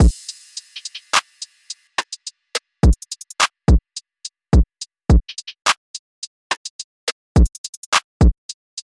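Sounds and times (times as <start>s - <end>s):
warm drums: 0.0s - 3.8s, 4.6s - 5.5s.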